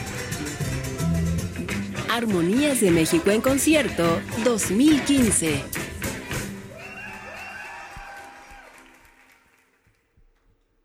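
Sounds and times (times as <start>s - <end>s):
crowd clapping in a large space: 0.0s - 10.6s
speech: 2.1s - 5.8s
whistles and whoops: 6.7s - 9.0s.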